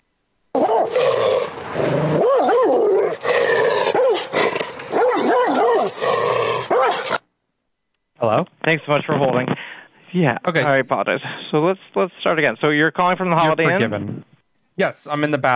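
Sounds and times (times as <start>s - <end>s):
several dogs barking and growling aggressively: 0.6s - 7.2s
speech: 8.3s - 15.5s.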